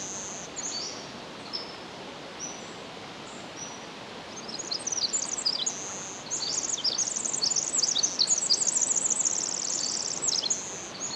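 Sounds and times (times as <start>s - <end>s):
hissy background: 0.0s - 11.1s
Pacific wren song with high trills: 4.4s - 11.1s.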